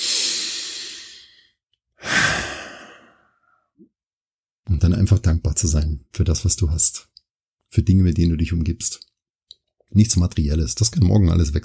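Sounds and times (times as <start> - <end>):
full audible exhale: 0.0 - 3.4
deep breath drawn into the belly: 0.0 - 3.7
speech: 4.8 - 7.1, 7.7 - 9.1, 9.9 - 11.6.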